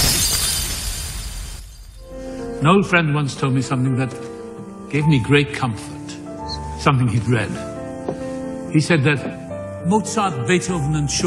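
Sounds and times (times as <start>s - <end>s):
glass shattering: 0.0s - 2.0s
speech: 2.6s - 4.3s, 4.9s - 6.0s, 6.8s - 7.7s, 8.7s - 11.2s.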